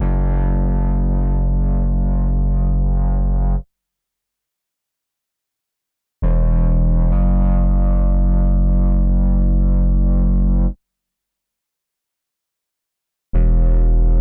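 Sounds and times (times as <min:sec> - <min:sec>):
bass in F sharp minor: 0:00.0 - 0:03.7, 0:06.2 - 0:10.8, 0:13.4 - 0:14.2.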